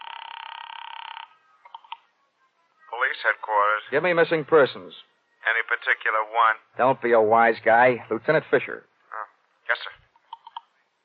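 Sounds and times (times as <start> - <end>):
telephone ringing with rapid trill: 0.0 - 2.0
speech: 3.2 - 5.1, 5.7 - 8.9.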